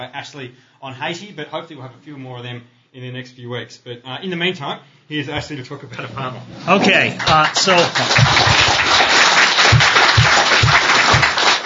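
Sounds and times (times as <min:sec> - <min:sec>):
speech: 0:00.0 - 0:09.0
audience applause at a political talk: 0:07.2 - 0:11.6.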